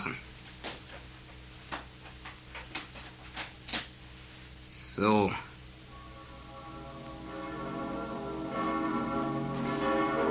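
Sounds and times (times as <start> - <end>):
speech: 5.0 - 5.5
church bells ringing: 5.9 - 10.2.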